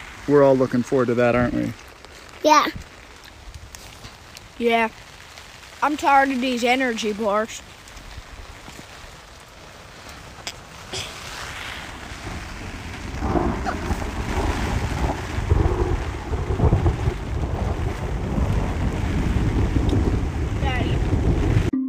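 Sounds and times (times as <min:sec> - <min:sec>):
speech: 0:00.3 - 0:01.8, 0:02.4 - 0:02.9, 0:04.6 - 0:05.0, 0:05.8 - 0:07.7
storm wind roaring and gusting: 0:11.5 - 0:21.7.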